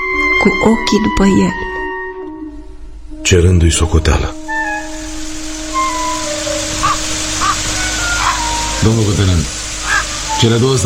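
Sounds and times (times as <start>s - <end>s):
speech: 0.4s - 1.6s, 3.3s - 4.4s, 8.8s - 9.6s, 10.4s - 10.8s
hiss: 2.3s - 10.8s
ravens cawing: 4.5s - 10.3s.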